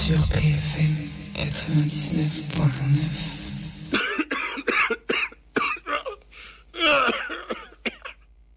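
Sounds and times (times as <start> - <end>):
speech: 0.1 - 3.4
woman coughing in short harsh bursts: 3.9 - 6.3, 6.8 - 8.3.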